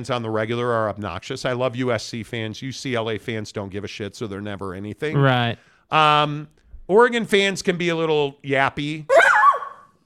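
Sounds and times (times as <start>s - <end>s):
speech: 0.0s - 9.2s
dog barking: 9.1s - 9.9s.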